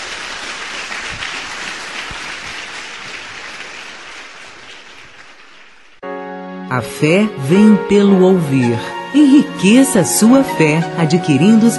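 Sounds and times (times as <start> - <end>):
congregation applauding at a church service: 0.0 - 6.1
speech: 6.7 - 11.7.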